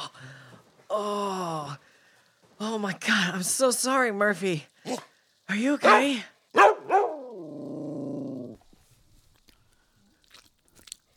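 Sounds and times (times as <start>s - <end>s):
speech: 0.9s - 1.9s, 2.6s - 6.7s
dog barking: 5.8s - 7.2s.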